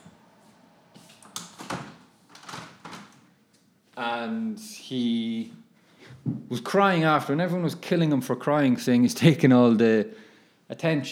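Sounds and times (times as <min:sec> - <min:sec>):
door rattling and creaking as it is pushed shut: 0:01.3 - 0:03.3
speech: 0:04.0 - 0:05.6, 0:06.2 - 0:11.0.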